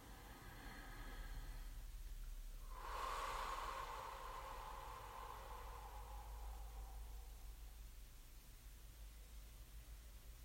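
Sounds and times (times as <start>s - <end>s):
slow breathing in and out: 0.0s - 8.3s
faint hiss: 0.0s - 10.4s.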